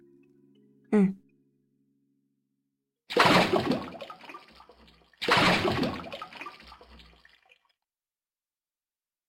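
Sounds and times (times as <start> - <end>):
speech: 0.9 - 1.2
large sea turtle plunging into sea water: 3.1 - 7.5.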